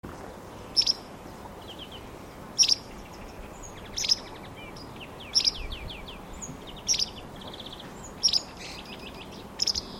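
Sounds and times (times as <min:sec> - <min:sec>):
low background hiss: 0:00.1 - 0:09.9
soft bird twittering: 0:00.1 - 0:09.9
sharp high bird chirps: 0:03.7 - 0:09.9.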